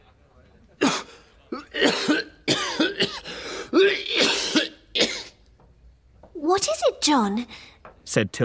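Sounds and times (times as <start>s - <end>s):
man coughing: 0.8s - 5.4s
speech: 7.1s - 8.4s.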